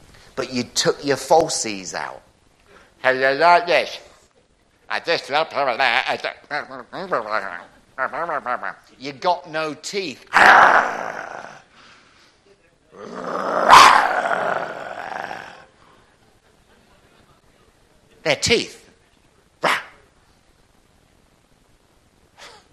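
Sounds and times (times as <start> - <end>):
speech: 0.4 - 2.3, 3.0 - 4.1, 4.9 - 11.4, 18.3 - 18.8
person imitating a lion with a loud raspy growl: 10.3 - 11.7, 12.9 - 15.7.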